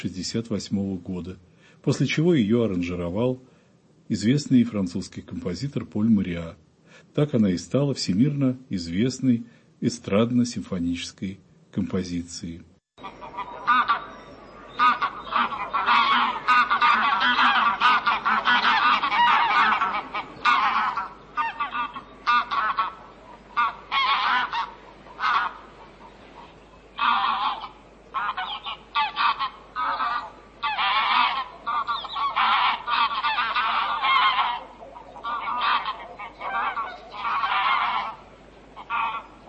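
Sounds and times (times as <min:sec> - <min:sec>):
speech: 0:00.0 - 0:03.5, 0:04.1 - 0:13.2
flock of wild geese honking: 0:13.0 - 0:39.4.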